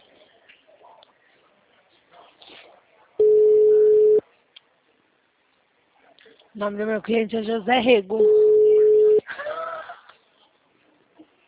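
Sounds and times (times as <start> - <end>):
single telephone tone while placing a call: 3.2 - 4.2, 8.2 - 9.2
speech: 6.6 - 8.4.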